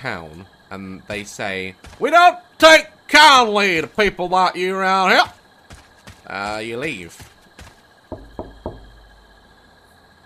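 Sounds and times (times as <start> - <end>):
speech: 0.0 - 5.4, 6.3 - 7.3
faint steady hum: 0.0 - 10.2
firm knocks on a door: 8.1 - 9.0.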